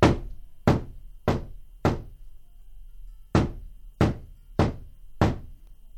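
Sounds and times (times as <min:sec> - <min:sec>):
firm knocking on a wooden door: 0:00.0 - 0:02.2, 0:03.4 - 0:05.5.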